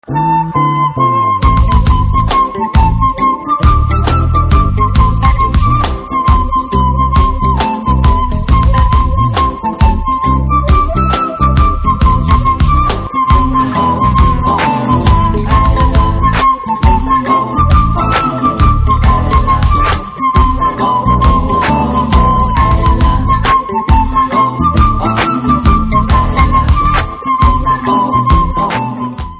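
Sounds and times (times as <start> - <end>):
anthem-style background music flute ringtone: 0.0 - 29.3.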